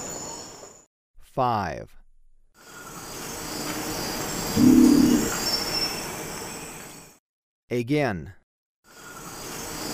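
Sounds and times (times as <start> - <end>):
speech: 1.4 - 2.0, 7.7 - 8.4
steady hiss of forest insects in Ecuador: 2.6 - 7.0, 8.9 - 9.9
long-wattled umbrellabird giving a deep buzzy boom in Ecuador: 4.6 - 5.4.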